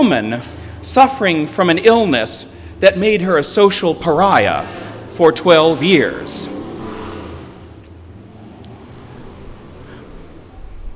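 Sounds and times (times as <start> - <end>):
speech: 0.1 - 6.7
motorcycles passing by: 0.3 - 10.9
gusty wind noise: 9.2 - 10.9.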